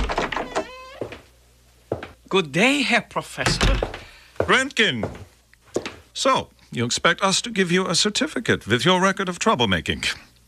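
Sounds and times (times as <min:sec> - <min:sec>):
door creaking open: 0:00.0 - 0:01.2, 0:03.4 - 0:04.1
speech: 0:02.3 - 0:03.9, 0:04.5 - 0:05.3, 0:06.2 - 0:10.3.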